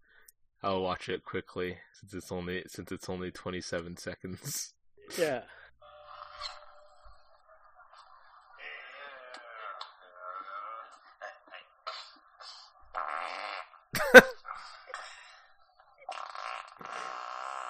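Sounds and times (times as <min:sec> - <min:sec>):
speech: 0:00.6 - 0:05.6, 0:14.1 - 0:14.3
thin squeaky fart noises in a movie post-credit scene: 0:05.8 - 0:17.6.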